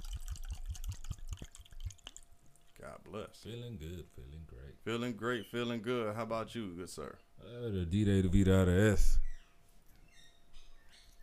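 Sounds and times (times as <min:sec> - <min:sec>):
wine being poured into a glass: 0:00.0 - 0:02.2
speech: 0:02.8 - 0:09.2.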